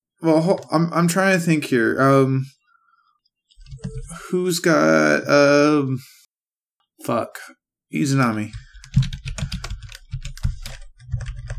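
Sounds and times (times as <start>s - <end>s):
speech: 0.2s - 2.6s, 4.1s - 6.2s, 7.0s - 9.1s
furious typing on a computer keyboard: 3.6s - 4.3s, 8.5s - 11.5s.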